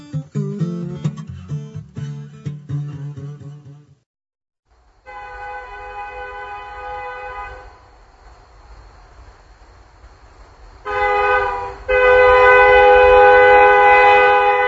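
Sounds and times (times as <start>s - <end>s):
modern train horn blasts: 5.0s - 7.8s, 10.8s - 14.6s.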